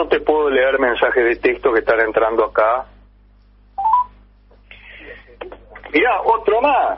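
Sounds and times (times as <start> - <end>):
speech: 0.0 - 2.9, 5.4 - 6.9
faint buzzy telephone tone: 3.8 - 4.2.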